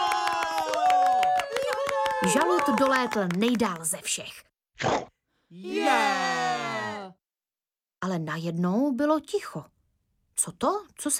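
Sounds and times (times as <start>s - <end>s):
voices cheering and whooping loudly: 0.0s - 3.4s, 5.6s - 7.2s
brisk applause from a small crowd: 0.0s - 3.9s
speech: 2.2s - 4.9s, 5.5s - 6.4s, 8.0s - 9.8s, 10.4s - 11.1s.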